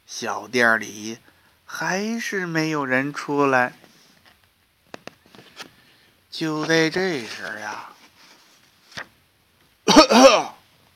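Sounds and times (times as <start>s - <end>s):
speech: 0.1s - 3.9s, 6.4s - 8.0s
person coughing to clear their throat: 9.9s - 10.6s.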